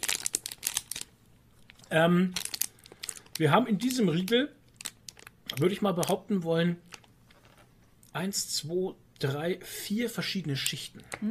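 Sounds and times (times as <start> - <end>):
firm paper snack bar wrapper crinkling: 0.0 - 6.2, 6.8 - 7.6
speech: 1.9 - 2.4, 3.4 - 4.6, 5.6 - 6.9, 8.2 - 11.3.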